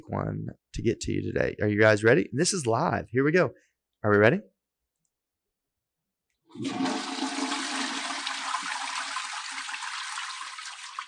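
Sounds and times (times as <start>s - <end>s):
speech: 0.0s - 4.5s, 6.5s - 7.2s
toilet flushing: 6.5s - 11.0s.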